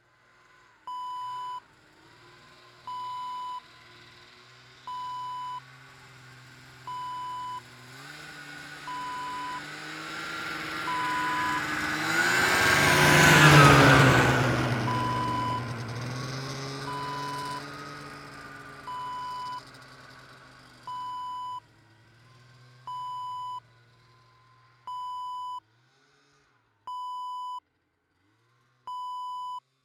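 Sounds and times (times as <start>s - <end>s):
snowmobile passing by: 5.7s - 20.8s.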